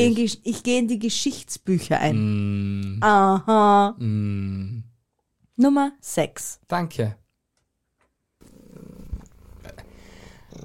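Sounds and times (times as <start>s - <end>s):
speech: 0.0s - 4.8s, 5.6s - 7.2s
cat purring: 8.4s - 10.6s.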